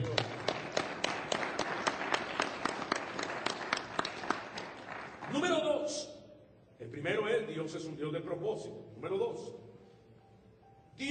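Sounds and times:
audience clapping: 0.0 - 5.6
speech: 7.0 - 9.6.

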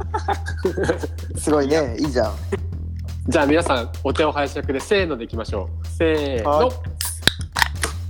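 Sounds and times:
laughter: 0.0 - 2.7
speech: 0.3 - 2.6, 3.2 - 6.9
beer cans cracking open for a toast: 7.0 - 8.0.

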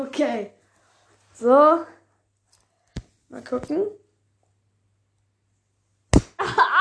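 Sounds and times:
speech: 0.0 - 0.6, 1.4 - 2.0, 3.3 - 4.0
hand slapping bare skin: 6.1 - 6.4.

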